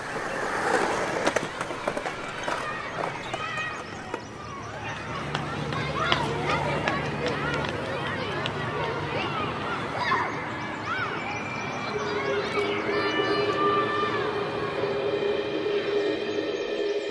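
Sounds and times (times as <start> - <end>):
skateboard wheels clacking over pavement cracks: 0.0 - 4.4
skateboard rolling on pavement in a cul-de-sac: 0.0 - 9.8
outdoor ambience: 0.0 - 17.0
faint voices: 1.2 - 17.0.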